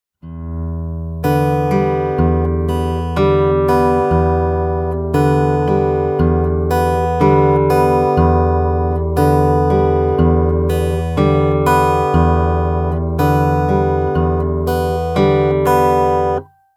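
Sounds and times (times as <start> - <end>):
acoustic guitar playing an alternating bass fingerstyle pattern: 0.2 - 16.6.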